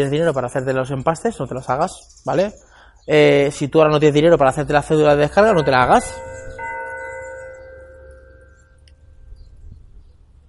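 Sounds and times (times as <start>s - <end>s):
speech: 0.0s - 6.5s
church bell striking the half hour: 4.7s - 9.6s.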